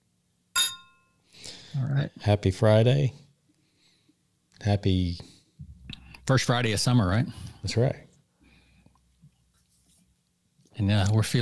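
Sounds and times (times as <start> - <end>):
glasses clinking in a toast: 0.6 - 1.2
speech: 1.8 - 3.2, 4.6 - 5.3, 6.3 - 8.1, 10.8 - 11.4.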